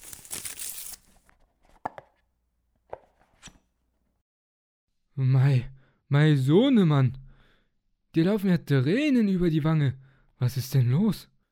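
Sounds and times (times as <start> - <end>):
gift wrapping paper torn open: 0.0 - 1.2
speech: 5.2 - 7.2, 8.2 - 11.3.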